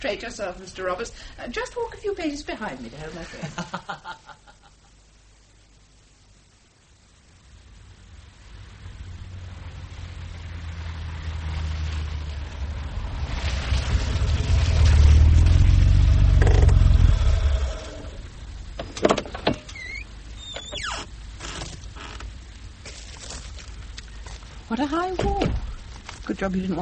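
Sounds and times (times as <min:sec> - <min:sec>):
speech: 0:00.0 - 0:04.4, 0:26.4 - 0:26.8
laughter: 0:03.2 - 0:04.9
Mercedes car engine rumbling: 0:08.2 - 0:26.3.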